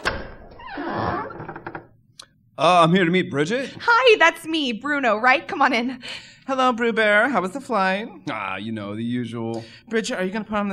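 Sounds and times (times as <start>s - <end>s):
door opening with dull thunk and smooth sliding: 0.0s - 2.0s
speech: 2.6s - 10.7s.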